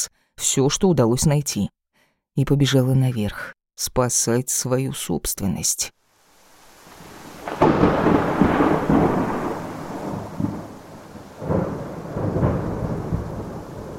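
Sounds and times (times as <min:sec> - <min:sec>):
speech: 0:00.0 - 0:01.8, 0:02.4 - 0:06.0
heavy rain in a thunderstorm: 0:06.1 - 0:13.9
thunder crack and rolling rumble in a thunderstorm: 0:06.5 - 0:13.9.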